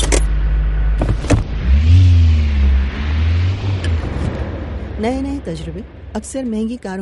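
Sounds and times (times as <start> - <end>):
turbocharged car engine revving: 0.0 - 6.9
speech: 5.0 - 6.9.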